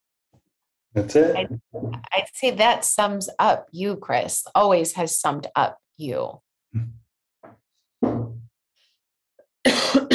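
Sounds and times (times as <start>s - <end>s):
speech: 0.9s - 7.0s
person coughing from something caught in the throat: 9.7s - 10.1s.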